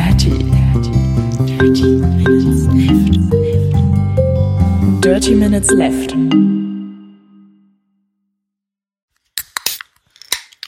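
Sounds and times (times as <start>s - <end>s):
musical tone: 0.8s - 7.8s
speech: 1.6s - 2.3s, 5.2s - 6.4s
can of soda cracked open: 9.3s - 10.6s.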